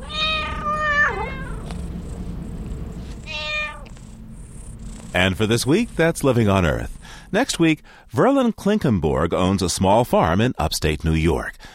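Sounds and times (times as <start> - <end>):
female cat meowing: 0.0 - 1.7, 3.2 - 4.1
low rumble: 0.0 - 10.1
speech: 5.2 - 11.7.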